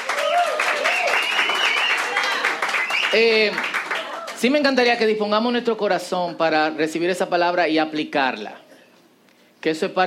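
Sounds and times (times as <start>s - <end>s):
audience applause: 0.0s - 4.4s
speech: 3.1s - 3.8s, 4.4s - 8.6s, 9.6s - 10.0s.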